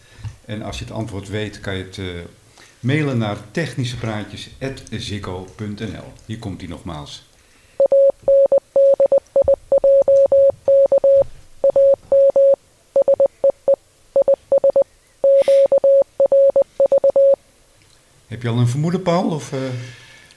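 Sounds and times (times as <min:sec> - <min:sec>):
speech: 0:00.5 - 0:07.3, 0:18.4 - 0:20.0
steady-pitched Morse code beeps: 0:07.8 - 0:17.4.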